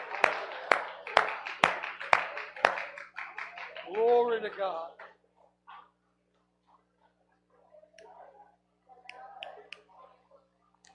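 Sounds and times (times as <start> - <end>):
audience clapping in a steady even beat: 0.0 - 4.8
faint crowd noise: 0.0 - 10.9
speech: 3.9 - 5.0.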